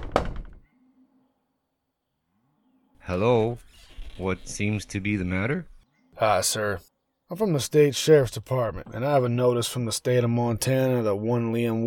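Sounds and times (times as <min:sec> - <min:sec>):
knock on a wooden front door: 0:00.0 - 0:00.6
speech: 0:03.1 - 0:11.8.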